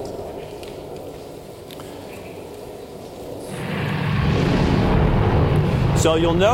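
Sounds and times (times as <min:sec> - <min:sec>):
liquid-oxygen-fuelled rocket launch roar from onboard camera: 0:03.5 - 0:06.5.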